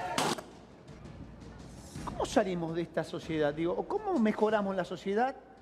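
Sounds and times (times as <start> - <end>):
gunshot in a neighborhood shooting: 0.2 - 0.6
speech: 2.2 - 5.5.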